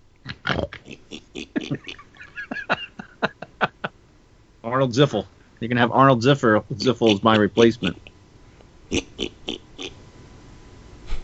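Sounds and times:
pig oinking in short grunts: 0.3s - 1.9s, 8.9s - 10.0s
laughter: 0.3s - 4.0s, 6.6s - 8.1s
speech: 4.8s - 8.0s.

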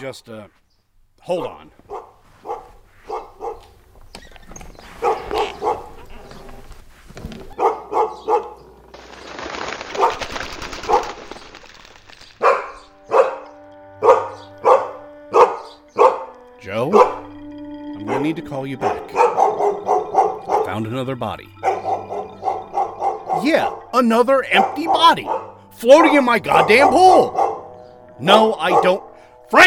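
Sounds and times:
speech: 0.0s - 0.6s, 1.2s - 1.9s, 18.3s - 19.3s, 20.7s - 21.9s, 23.4s - 27.4s, 28.2s - 29.6s
dog barking excitedly: 1.9s - 3.8s, 4.9s - 6.2s, 7.5s - 8.6s, 10.0s - 10.2s, 12.4s - 17.3s, 18.0s - 20.8s, 21.5s - 23.9s, 24.5s - 27.8s.

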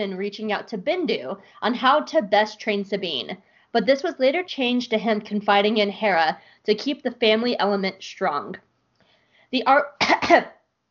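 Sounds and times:
speech: 0.0s - 8.7s, 9.5s - 10.6s
person coughing after inhaling spit: 10.0s - 10.6s.

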